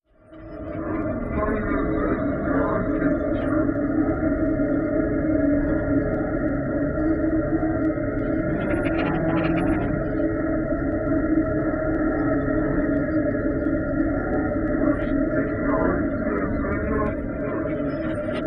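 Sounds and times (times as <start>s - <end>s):
deep ambience: 0.2s - 18.4s.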